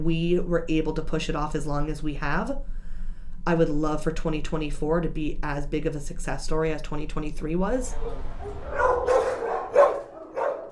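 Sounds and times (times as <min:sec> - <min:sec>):
speech: 0:00.0 - 0:02.8, 0:03.4 - 0:08.8
several dogs barking in indoor shelter kennels: 0:07.9 - 0:10.7.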